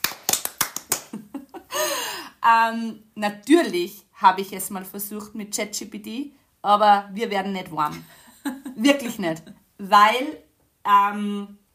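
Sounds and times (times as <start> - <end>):
sharp hand claps: 0.0 - 1.3
speech: 2.4 - 11.6.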